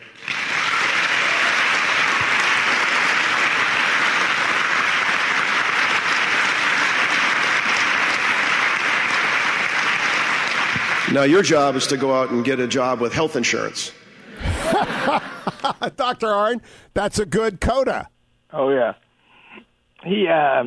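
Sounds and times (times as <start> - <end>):
large audience applauding: 0.0 - 12.9
speech: 11.2 - 14.0, 15.1 - 19.0, 20.0 - 20.6
laughter: 14.2 - 16.4.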